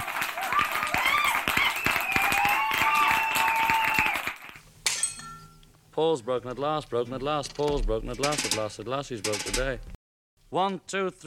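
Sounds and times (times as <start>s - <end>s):
high excited cheering voices: 0.0s - 4.5s
large audience clapping: 0.0s - 4.6s
speech: 6.0s - 11.2s.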